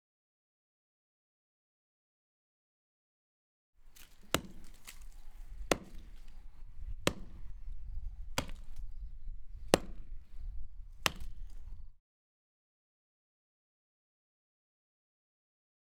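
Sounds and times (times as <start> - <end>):
chopping a tree: 3.8 - 12.0.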